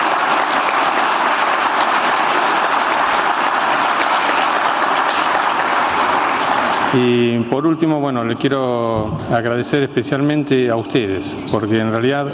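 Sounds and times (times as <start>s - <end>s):
large audience applause: 0.0s - 7.8s
speech: 6.9s - 12.3s.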